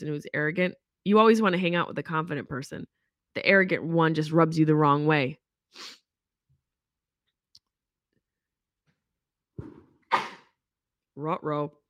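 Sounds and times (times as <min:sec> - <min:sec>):
speech: 0:00.0 - 0:06.0, 0:11.2 - 0:11.8
person sneezing: 0:09.6 - 0:10.6.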